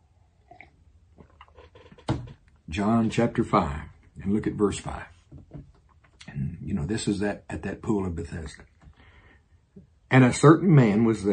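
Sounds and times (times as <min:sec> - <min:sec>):
quiet sip and swallowing noises from a drink: 0:00.3 - 0:02.1
speech: 0:02.7 - 0:05.2, 0:06.7 - 0:08.7, 0:10.1 - 0:11.3.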